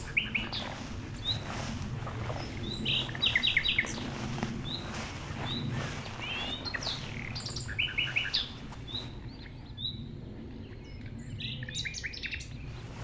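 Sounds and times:
common nightingale singing in tall grass: 0.0 - 9.1
recordist approaching through tall grass: 0.0 - 9.4, 12.5 - 13.0
airliners in background: 0.0 - 11.2.

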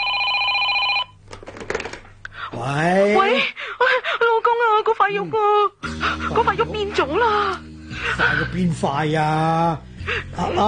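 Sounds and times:
telephone ringing with an electronic trill: 0.0 - 1.2
speech: 2.6 - 4.2, 4.8 - 10.6.

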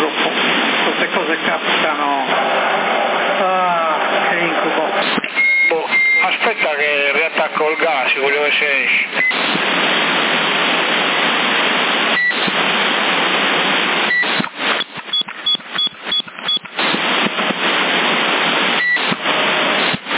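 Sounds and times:
CB radio static hiss: 0.0 - 20.1
speech: 1.3 - 2.3, 7.5 - 11.0
short high CB radio beeps: 5.3 - 6.4, 14.1 - 16.6.

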